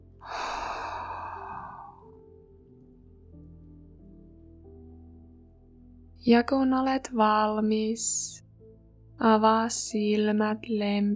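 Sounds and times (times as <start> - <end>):
person breathing in through the nose and out through the mouth during guided meditation: 0.2 - 2.2
speech: 6.2 - 8.4, 9.2 - 11.1.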